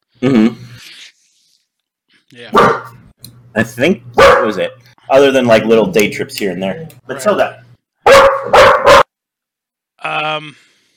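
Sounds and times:
speech: 0.2 - 0.6, 2.3 - 7.6, 10.4 - 10.7
dog barking: 2.5 - 3.0, 4.2 - 4.6, 8.0 - 9.1.

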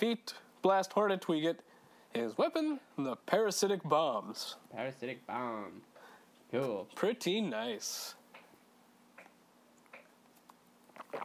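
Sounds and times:
speech: 0.0 - 5.9, 6.5 - 8.2
faint steady hum: 0.0 - 11.2
sipping water: 10.8 - 11.2.

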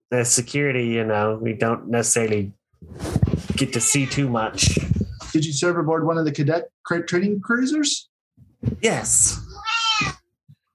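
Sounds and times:
speech: 0.1 - 10.2
angry cat meowing: 9.4 - 10.3.

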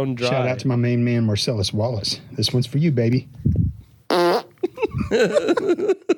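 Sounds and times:
speech: 0.0 - 3.5, 5.0 - 6.1
short loud tonal fart: 4.1 - 4.6
laughter: 4.6 - 6.1.

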